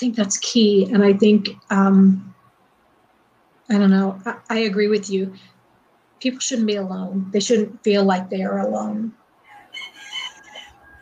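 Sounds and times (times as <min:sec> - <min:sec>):
speech: 0:00.0 - 0:02.4, 0:03.7 - 0:05.5, 0:06.2 - 0:09.2
rooster crowing: 0:09.5 - 0:11.0.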